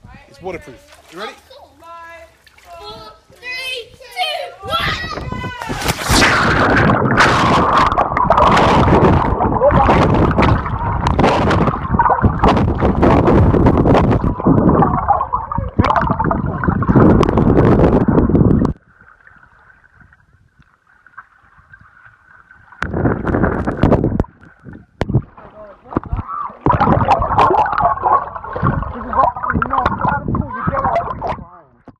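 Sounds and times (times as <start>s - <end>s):
water jump splash: 5.6s - 20.3s, 20.9s - 31.5s.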